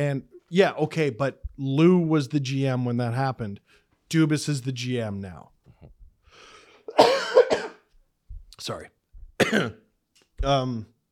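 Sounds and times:
speech: 0.0s - 6.0s, 6.9s - 7.4s, 8.6s - 9.8s, 10.4s - 10.9s
harsh throat clearing: 6.9s - 7.9s, 9.4s - 9.9s
person coughing: 6.9s - 7.9s, 9.4s - 9.8s.

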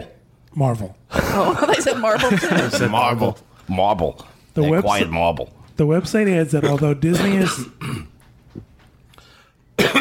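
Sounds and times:
speech: 0.6s - 8.1s
harsh cough: 6.6s - 8.2s, 9.8s - 9.9s.

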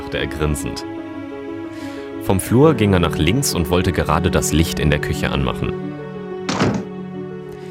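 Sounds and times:
speech: 0.1s - 1.0s, 2.2s - 5.9s
heavy thud of something banging against a door: 6.5s - 7.0s.

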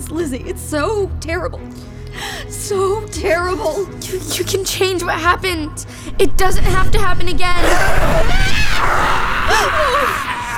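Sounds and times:
speech: 0.1s - 10.3s
person screaming: 7.6s - 10.5s.

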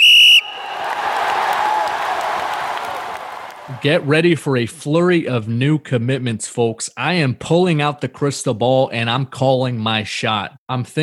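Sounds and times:
shrill referee whistle blast for kickoff: 0.0s - 0.8s
large stadium crowd cheering and clapping: 0.0s - 4.1s
speech: 3.7s - 11.0s.

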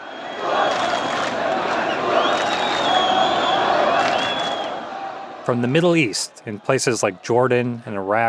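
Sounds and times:
shrill whistles: 0.0s - 4.9s
large crowd of protesters roaring and cheering: 0.0s - 8.2s
speech: 5.5s - 8.2s.

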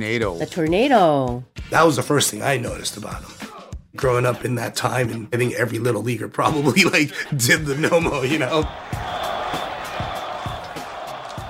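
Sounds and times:
speech: 0.0s - 9.0s
laughter: 6.5s - 8.7s
stadium crowd roaring and cheering: 7.1s - 11.4s.

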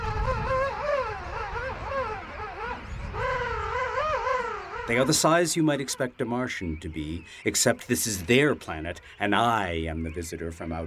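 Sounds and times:
colony of king penguins singing on a curving beach on South Georgia: 0.0s - 6.9s
speech: 4.9s - 10.8s.

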